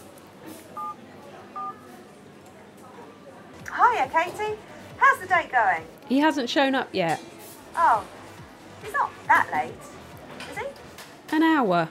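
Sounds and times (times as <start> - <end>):
telephone touch-tone dialing beeps: 0.8 - 1.0, 1.6 - 1.8
speech: 4.0 - 8.2, 8.8 - 9.9, 11.3 - 11.8.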